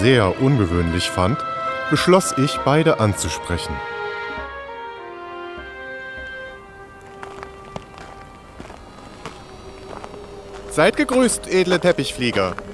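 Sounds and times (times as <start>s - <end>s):
speech: 0.0s - 4.0s, 10.8s - 12.7s
footsteps: 4.9s - 12.7s
steady humming drone: 5.1s - 12.7s.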